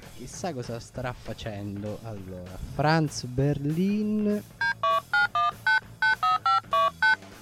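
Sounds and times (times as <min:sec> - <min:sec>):
speech: 0:00.2 - 0:04.8
telephone keypad dialing tones: 0:04.6 - 0:07.2.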